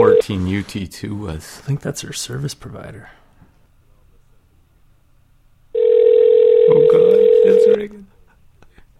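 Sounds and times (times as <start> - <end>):
speech: 0.0 - 3.2, 7.6 - 8.1
electronic telephone ring-back tone while call connects: 5.8 - 7.8.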